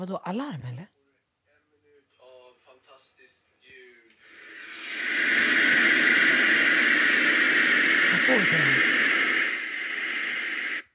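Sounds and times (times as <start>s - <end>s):
speech: 0.0s - 1.0s, 8.3s - 9.0s
TV static hiss after broadcast ends: 4.2s - 10.9s
voice-like sounds: 4.3s - 9.6s.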